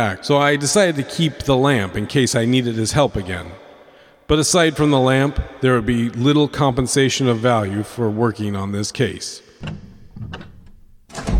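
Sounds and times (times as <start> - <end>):
speech: 0.0 - 3.6, 4.3 - 10.5
office door opening with a creak and thunk: 9.6 - 11.3.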